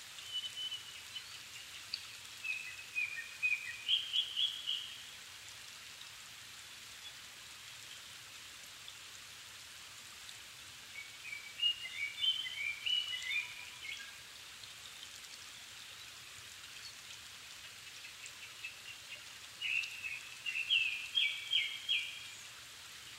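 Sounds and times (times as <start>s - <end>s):
steady background hiss: 0.0s - 23.1s
Japanese thrush delivering whistled song phrases at 270 m altitude in the evening: 0.2s - 1.4s, 2.4s - 4.9s, 10.9s - 14.1s, 19.6s - 22.3s.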